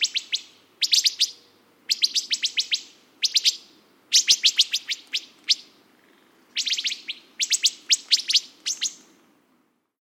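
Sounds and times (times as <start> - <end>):
Wood thrush sharp high pit calls: 0.0 - 5.8, 6.5 - 9.1.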